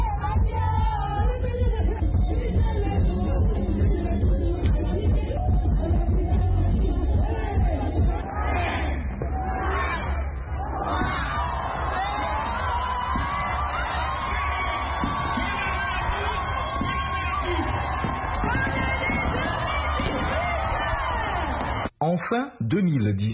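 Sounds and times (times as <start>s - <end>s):
concert crowd shouting and singing along: 0.0s - 21.8s
large concert crowd cheering: 5.4s - 22.0s
speech: 22.3s - 23.3s.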